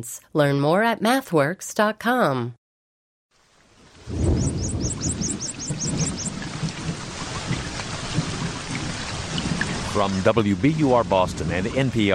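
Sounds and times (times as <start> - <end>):
speech: 0.0 - 2.6, 10.0 - 12.1
heavy rain: 3.4 - 12.1
deep thunder rumbling: 3.9 - 12.1
high bird-like chirps: 4.2 - 6.4.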